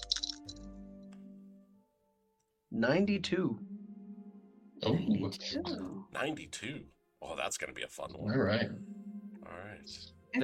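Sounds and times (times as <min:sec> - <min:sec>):
small dice rattling in a cup: 0:00.0 - 0:00.5
speech: 0:02.8 - 0:03.7, 0:04.8 - 0:10.4.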